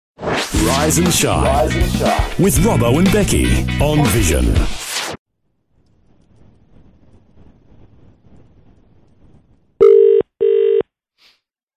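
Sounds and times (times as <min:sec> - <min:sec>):
speech: 0:00.6 - 0:04.8
faint low rumbling noise: 0:05.4 - 0:09.8
electronic ringback tones of a phone call placed from Australia: 0:09.8 - 0:10.9.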